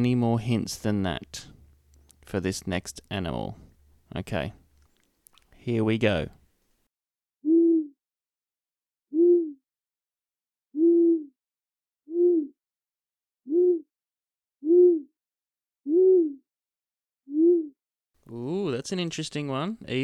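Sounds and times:
speech: 0.0s - 1.5s, 2.3s - 4.6s, 5.6s - 6.4s, 18.3s - 20.0s
owl hooting: 7.5s - 7.9s, 9.2s - 9.6s, 10.8s - 11.3s, 12.1s - 12.5s, 13.5s - 13.8s, 14.6s - 15.1s, 15.9s - 16.4s.

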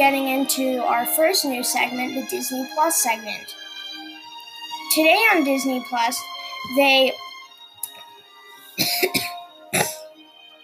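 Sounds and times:
speech: 0.0s - 3.6s, 4.9s - 7.3s, 8.8s - 10.0s
person clearing throat with dust caught in it: 8.8s - 10.1s
person coughing with dust in throat: 8.8s - 10.1s.

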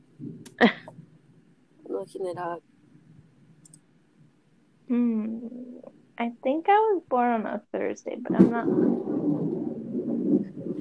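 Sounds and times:
speech: 0.6s - 0.8s, 2.1s - 2.7s, 4.9s - 5.6s, 6.2s - 9.1s
thunder rumbling during a storm with lightning: 1.9s - 2.6s, 4.9s - 10.7s.

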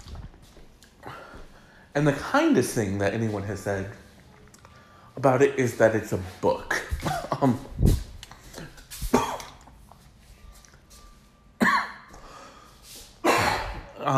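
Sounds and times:
speech: 2.0s - 4.0s, 5.2s - 7.9s
person in a long unintended fit of loud coughing: 6.8s - 7.8s, 8.5s - 9.7s, 11.6s - 12.1s, 13.2s - 14.1s.

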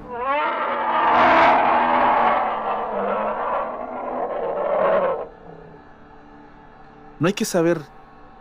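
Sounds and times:
distant bear crying in suffering and pain: 0.0s - 5.9s
speech: 7.2s - 8.0s.

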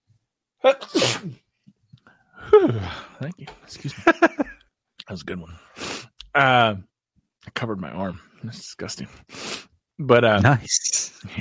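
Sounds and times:
person sneezing: 0.6s - 1.4s
speech: 0.6s - 1.4s, 2.4s - 4.4s, 5.1s - 5.7s, 6.4s - 6.9s, 7.6s - 11.4s
laughter: 3.8s - 4.6s.

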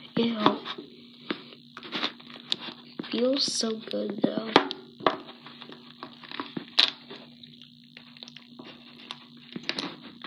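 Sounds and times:
low steady hum: 0.0s - 10.2s
speech: 3.2s - 4.8s
expired crunchy slime with broken fruit beads being squeezed: 4.6s - 9.9s.

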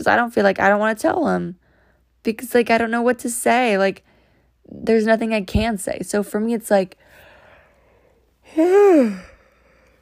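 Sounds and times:
speech: 0.0s - 1.6s, 2.2s - 4.1s, 4.7s - 7.2s, 8.5s - 9.3s
human yawn late at night: 8.5s - 9.6s.

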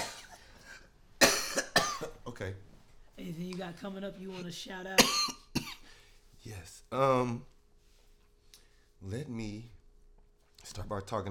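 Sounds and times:
quiet breathy noise: 0.0s - 1.0s, 5.7s - 6.4s, 7.8s - 9.0s
person coughing: 0.0s - 2.2s, 5.0s - 5.9s
speech: 2.4s - 5.4s, 6.4s - 7.5s, 9.0s - 9.8s, 10.7s - 11.3s.

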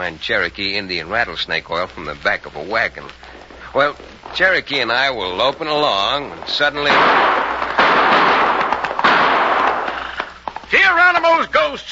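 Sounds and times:
speech: 0.0s - 7.4s, 10.8s - 11.9s
rapid volley of gunshots: 6.6s - 10.2s.

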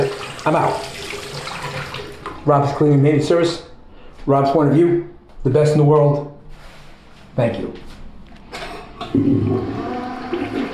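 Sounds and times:
speech: 0.0s - 1.1s, 2.4s - 6.3s, 7.4s - 7.9s, 9.1s - 10.5s
toilet flushing: 0.0s - 2.6s, 9.0s - 10.7s.

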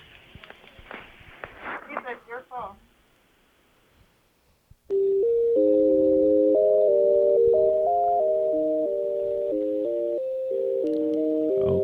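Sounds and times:
telephone hold music on a call to a coffee shop: 4.9s - 11.8s
brief click: 10.8s - 11.2s.

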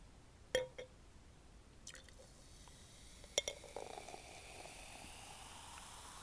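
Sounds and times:
glass clinks and taps: 0.6s - 0.9s
champagne mimosa fizzing as it is poured into a glass: 1.9s - 6.2s.

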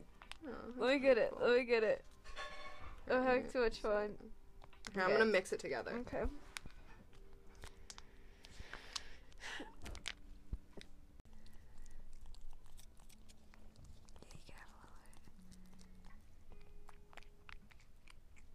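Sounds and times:
speech: 0.9s - 2.1s, 3.1s - 4.4s, 4.9s - 6.5s
female cat chewing chunks of food: 6.5s - 18.5s
faint whispery voices: 14.2s - 16.1s.

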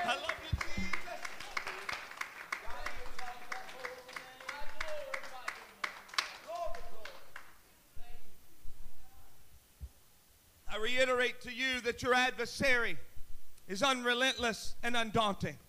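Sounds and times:
crowd clapping along: 0.0s - 7.6s
speech: 10.9s - 13.1s, 13.7s - 15.6s.

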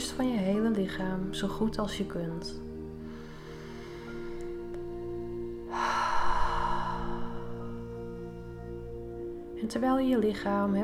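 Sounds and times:
soft sustained musical drone: 0.0s - 10.8s
speech: 0.2s - 2.7s, 9.6s - 10.8s
deep breath during a guided relaxation exercise: 3.0s - 4.7s, 5.5s - 8.7s.

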